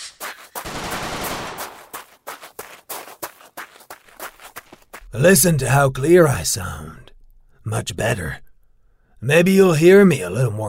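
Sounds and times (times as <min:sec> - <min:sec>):
gunshots fired through a hole: 0:00.6 - 0:02.2
speech: 0:05.1 - 0:07.1, 0:07.7 - 0:08.4, 0:09.2 - 0:10.6.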